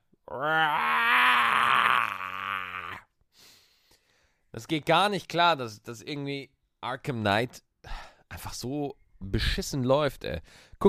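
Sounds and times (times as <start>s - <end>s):
speech: 0.3s - 1.1s, 4.6s - 7.7s, 8.3s - 10.8s
long drawn-out human yawn with strained open-mouthed groan: 0.3s - 3.0s.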